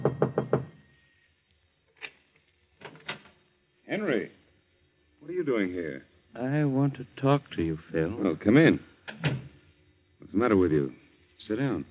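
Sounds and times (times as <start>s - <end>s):
knocking on a wooden apartment door: 0.0s - 0.8s
speech: 3.9s - 4.4s, 5.3s - 9.4s, 10.3s - 11.9s.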